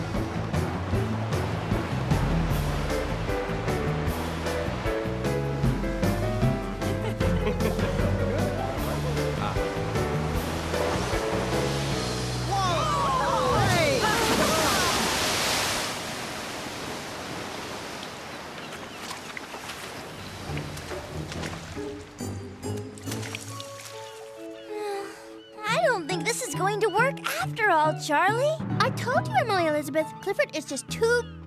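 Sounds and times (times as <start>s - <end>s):
rushing surge of water: 0.0s - 6.2s, 8.2s - 22.2s
music: 0.0s - 15.7s, 20.2s - 31.4s
laughter: 6.9s - 9.8s, 12.7s - 15.1s
big splash of water: 10.2s - 21.8s
speech: 28.0s - 31.4s.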